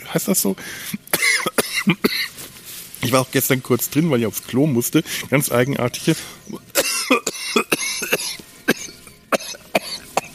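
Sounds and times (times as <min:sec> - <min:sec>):
speech: 0:00.1 - 0:02.3, 0:03.1 - 0:06.6
coughing fit after choking: 0:00.9 - 0:02.4, 0:06.1 - 0:10.3.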